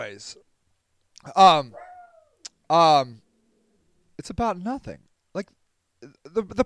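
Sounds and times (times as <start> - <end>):
speech: 0.0 - 0.5, 1.2 - 1.9, 2.7 - 3.2, 4.2 - 6.6
dog barking: 1.8 - 2.2.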